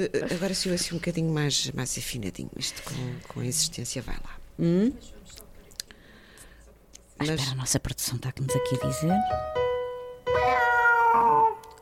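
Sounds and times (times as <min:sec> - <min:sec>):
speech: 0:00.0 - 0:05.4, 0:07.2 - 0:09.6
cats meowing a birthday tune: 0:10.3 - 0:11.8.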